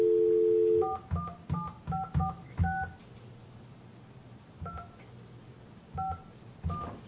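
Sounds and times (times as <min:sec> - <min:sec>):
telephone keypad tones as a number is dialed: 0:00.0 - 0:03.0, 0:06.0 - 0:07.0
faint noise: 0:00.0 - 0:07.0.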